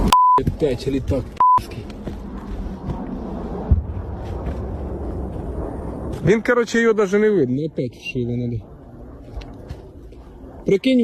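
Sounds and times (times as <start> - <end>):
deep wind-blown rumble: 0.0 - 11.0
speech: 0.4 - 1.8, 6.3 - 8.7, 10.6 - 11.0
distant explosion boom from an aerial bombing strike: 2.8 - 6.2.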